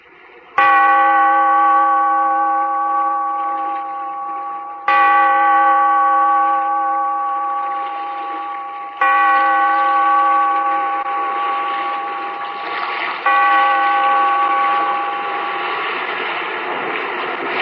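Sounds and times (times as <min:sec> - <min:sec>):
deep resonant bell tolling: 0:00.6 - 0:17.5.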